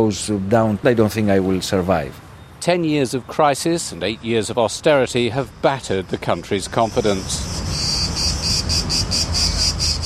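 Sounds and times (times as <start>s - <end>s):
speech: 0.0s - 7.8s
cicadas singing: 2.0s - 10.0s.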